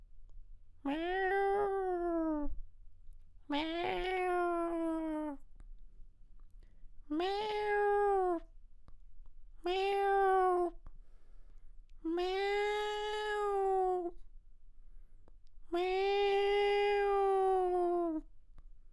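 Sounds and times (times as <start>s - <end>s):
domestic cat in heat giving wailing meows: 0.9s - 2.5s, 3.5s - 5.4s, 7.1s - 8.4s, 9.7s - 10.8s, 12.1s - 14.2s, 15.8s - 18.2s.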